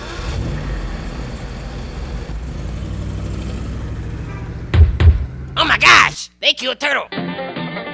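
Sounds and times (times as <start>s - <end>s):
bus engine revving as the bus pulls away: 0.0s - 5.6s
thump: 4.7s - 5.3s
speech: 5.8s - 7.2s.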